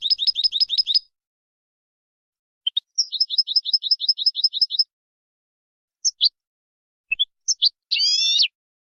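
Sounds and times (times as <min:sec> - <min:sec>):
European goldfinch song with twittering trills, tinkling notes and a buzzy nasal note: 0:00.0 - 0:01.1, 0:02.6 - 0:04.9, 0:06.0 - 0:06.4, 0:07.1 - 0:08.6.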